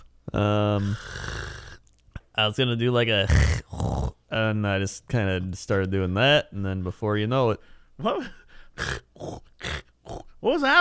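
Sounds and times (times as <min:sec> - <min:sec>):
person making a loud buzzing snore-like sound with the voice: 0:00.3 - 0:01.8, 0:03.2 - 0:04.2, 0:08.8 - 0:10.4
speech: 0:00.4 - 0:01.4, 0:02.4 - 0:09.4, 0:10.4 - 0:10.7.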